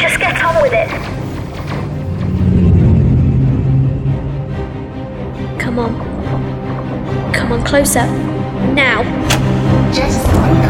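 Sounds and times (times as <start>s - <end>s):
engine revving as the throttle is opened: 0.8s - 7.7s
speech: 7.7s - 10.6s.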